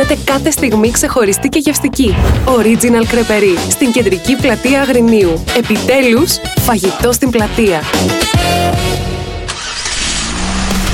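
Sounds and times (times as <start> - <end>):
speech: 0.1 - 8.6
go-kart engines at a kart track in Agrinio Greece starting up: 9.4 - 10.9.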